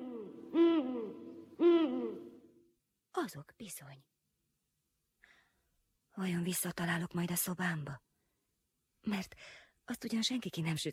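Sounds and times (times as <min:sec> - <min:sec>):
owl hooting: 0:00.0 - 0:02.6
speech: 0:03.2 - 0:04.1, 0:06.2 - 0:08.0, 0:09.0 - 0:10.9.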